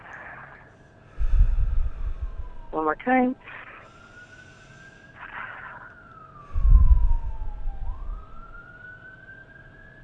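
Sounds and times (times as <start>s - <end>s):
breath drawn in through the nose and exhaled during a laughter exercise: 0.2s - 2.7s, 3.8s - 5.2s
speech: 2.7s - 3.7s.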